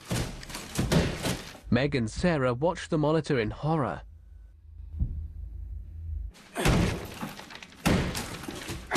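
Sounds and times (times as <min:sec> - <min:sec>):
claw hammer smashing a plasterboard wall: 0:00.0 - 0:01.6, 0:06.6 - 0:08.9
speech: 0:01.7 - 0:04.1
low hum: 0:04.0 - 0:06.4.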